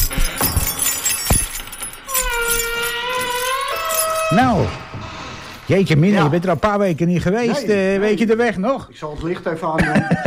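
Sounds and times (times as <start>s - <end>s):
keys jingling: 0.0s - 4.6s
door swinging open with creaking hinges: 0.0s - 5.5s
speech: 4.3s - 4.9s, 5.7s - 10.2s
laughter: 9.7s - 10.2s.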